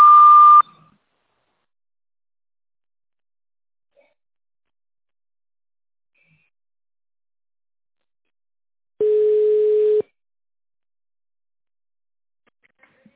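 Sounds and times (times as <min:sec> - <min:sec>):
short high telephone beep: 0:00.0 - 0:00.6, 0:09.0 - 0:10.0.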